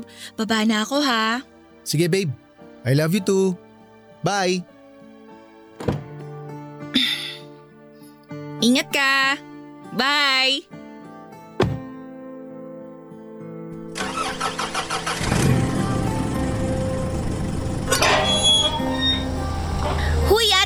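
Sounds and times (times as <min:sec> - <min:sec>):
speech: 0:00.0 - 0:03.6, 0:04.2 - 0:04.7, 0:08.6 - 0:10.8
sharp thud: 0:11.6 - 0:11.9
car engine running with a steady rumble: 0:14.0 - 0:18.2
car starter cranking: 0:14.0 - 0:20.3.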